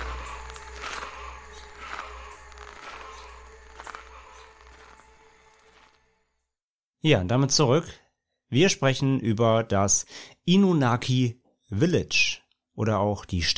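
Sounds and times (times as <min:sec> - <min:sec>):
slow footsteps thudding and scuffing: 0:00.0 - 0:06.3
steady low hum: 0:00.0 - 0:06.5
speech: 0:07.0 - 0:13.5.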